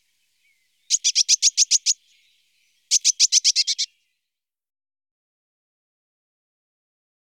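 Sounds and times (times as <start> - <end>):
Eurasian blue tit giving harsh buzzy notes: 0.0 - 3.9.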